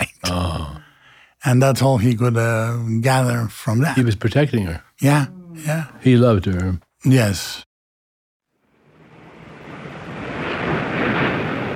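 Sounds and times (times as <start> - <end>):
speech: 1.4 - 7.7
waves crashing on a beach: 9.7 - 11.7.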